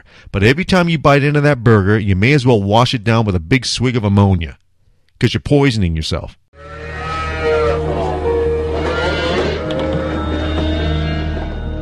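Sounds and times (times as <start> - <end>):
speech: 0.2 - 4.6, 5.2 - 6.8
cattle mooing in a slaughterhouse: 6.6 - 11.8.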